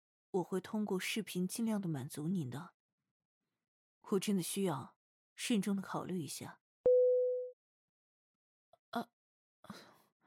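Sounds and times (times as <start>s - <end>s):
speech: 0.3s - 2.8s, 4.0s - 6.6s, 8.9s - 9.9s
phone beep after a call is hung up: 6.9s - 7.5s.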